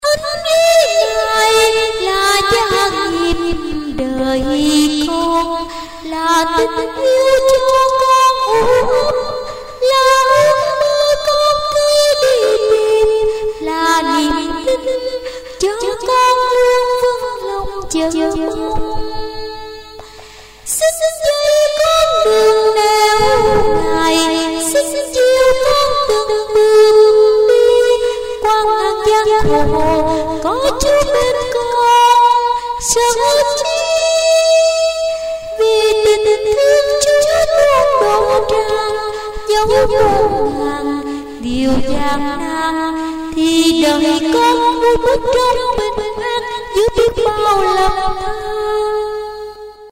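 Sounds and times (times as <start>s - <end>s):
soprano voice: 0.0s - 20.0s, 20.7s - 49.9s.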